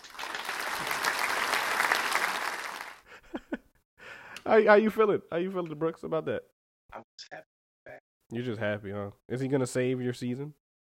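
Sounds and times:
applause: 0:00.0 - 0:03.0
speech: 0:04.5 - 0:07.5, 0:08.3 - 0:10.6.

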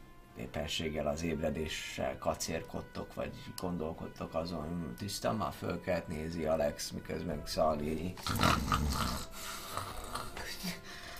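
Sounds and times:
speech: 0:00.4 - 0:10.0, 0:10.6 - 0:10.8
voice imitating a dragon snoring: 0:08.2 - 0:10.8.

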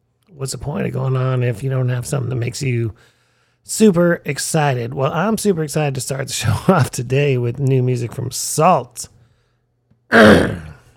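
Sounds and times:
speech: 0:00.3 - 0:09.2, 0:10.1 - 0:10.6
gravelly throat clearing: 0:10.1 - 0:10.9.

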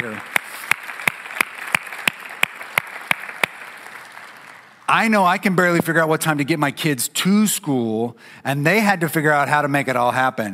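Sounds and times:
hands clapping: 0:00.0 - 0:04.9
speech: 0:04.9 - 0:10.5.

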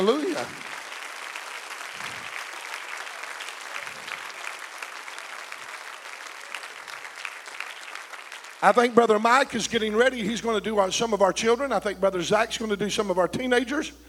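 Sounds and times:
speech: 0:00.0 - 0:00.7, 0:08.6 - 0:14.0
large audience standing and applauding baptism candidates: 0:00.0 - 0:10.1.

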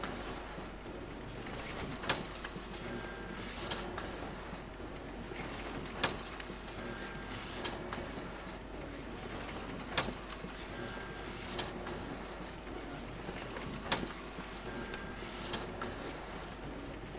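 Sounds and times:
printer running with mechanical whir and rattle: 0:00.0 - 0:17.1.

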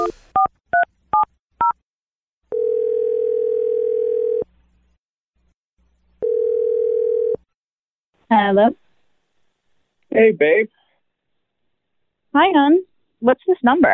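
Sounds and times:
steady telephone tone while calling: 0:02.5 - 0:04.5, 0:06.2 - 0:07.4
speech: 0:08.4 - 0:08.8, 0:10.2 - 0:10.8, 0:12.4 - 0:13.9.

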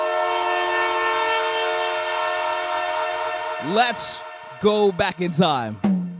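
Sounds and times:
train horn blaring: 0:00.0 - 0:04.7
speech: 0:03.6 - 0:05.9.

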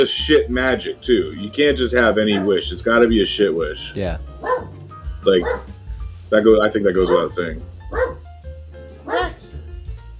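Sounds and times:
speech: 0:00.0 - 0:07.7
dog barking: 0:02.2 - 0:02.6, 0:04.4 - 0:05.8, 0:07.0 - 0:07.3, 0:07.9 - 0:08.2, 0:09.0 - 0:09.5.

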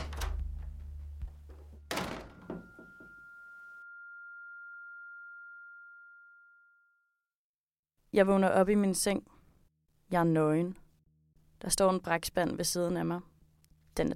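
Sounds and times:
door slamming shut: 0:00.0 - 0:00.8, 0:01.9 - 0:03.0
steady high-pitched ringing tone: 0:02.3 - 0:07.3
speech: 0:08.2 - 0:09.3, 0:10.1 - 0:10.8, 0:11.6 - 0:13.3, 0:14.0 - 0:14.1.

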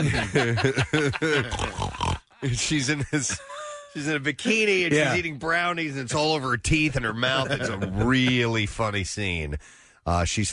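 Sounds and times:
laughter: 0:00.0 - 0:05.4, 0:07.1 - 0:08.7
speech: 0:00.0 - 0:10.5
voice imitating pig oinking and grunting: 0:01.4 - 0:02.3.

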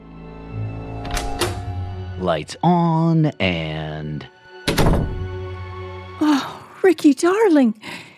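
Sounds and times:
speech: 0:02.2 - 0:04.4, 0:06.8 - 0:08.1
cabin door latch and door thunks: 0:04.6 - 0:05.4.

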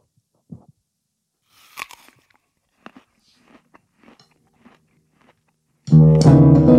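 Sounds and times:
crunching bites of a crunchy taco: 0:01.5 - 0:06.0.

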